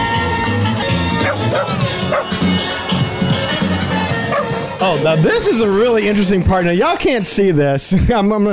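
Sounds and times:
dogs barking and yipping: 0:00.7 - 0:04.8
speech: 0:05.0 - 0:08.5.

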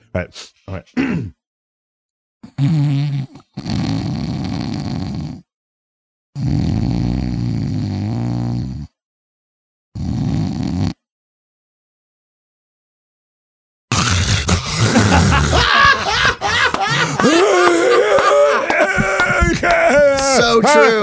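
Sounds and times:
speech: 0:00.2 - 0:01.4, 0:02.4 - 0:04.3
person's voice imitating sleep apnea snoring: 0:02.4 - 0:05.5, 0:06.4 - 0:09.0, 0:10.0 - 0:11.0, 0:13.9 - 0:15.9
laughter: 0:14.4 - 0:21.0.

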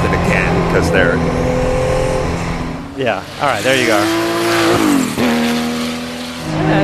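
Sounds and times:
race car engine screaming at high revs passing grandstand: 0:00.0 - 0:06.8
speech: 0:00.8 - 0:01.5, 0:03.0 - 0:05.0.

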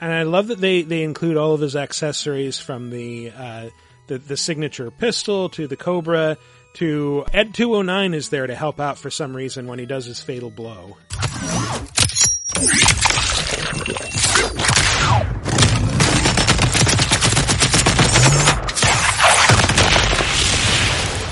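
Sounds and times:
speech: 0:00.0 - 0:11.9, 0:12.6 - 0:15.4
video game robot firing cannons: 0:14.6 - 0:21.3.

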